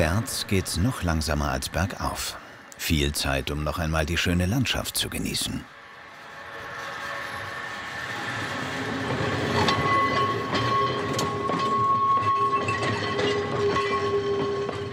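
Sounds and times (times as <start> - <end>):
speech: 0.0 - 5.8
historic tram rolling slowly downhill on rails: 0.0 - 14.9
squealing tonal whines from historic tram: 6.4 - 14.9
clacks and knocks from historic tram wheels: 8.3 - 14.9.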